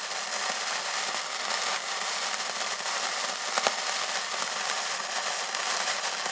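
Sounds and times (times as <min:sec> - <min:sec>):
sparklers fizzing: 0:00.0 - 0:06.3.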